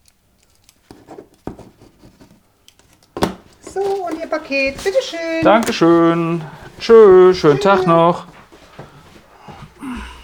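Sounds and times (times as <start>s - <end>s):
ballpoint pen scratching across paper signing for a parcel: 0.8s - 6.2s
speech: 3.8s - 8.3s.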